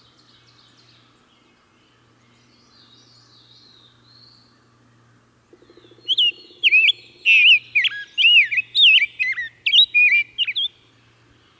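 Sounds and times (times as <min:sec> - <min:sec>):
rose-breasted grosbeak singing clear looping whistled notes: 0:06.0 - 0:10.8.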